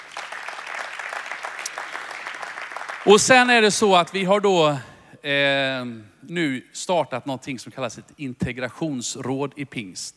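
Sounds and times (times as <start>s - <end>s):
audience applause: 0.0s - 3.3s
speech: 3.0s - 10.1s.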